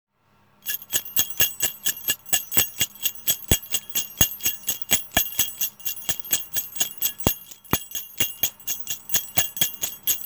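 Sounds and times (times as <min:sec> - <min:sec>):
brass bell ringing: 0:00.7 - 0:10.2.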